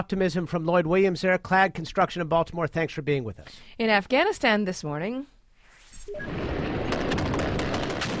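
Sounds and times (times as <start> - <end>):
speech: 0.0 - 5.4, 6.1 - 6.7
brief tones: 5.8 - 6.4
gunfire during a gun battle in Afghanistan between Taliban fighters and security forces: 6.3 - 8.1.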